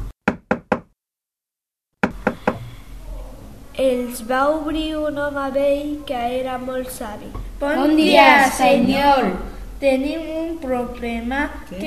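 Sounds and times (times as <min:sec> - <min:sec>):
knocking on a wooden door of a house: 0:00.2 - 0:00.9, 0:02.0 - 0:02.7
faint noise: 0:02.0 - 0:11.8
speech: 0:03.8 - 0:11.8.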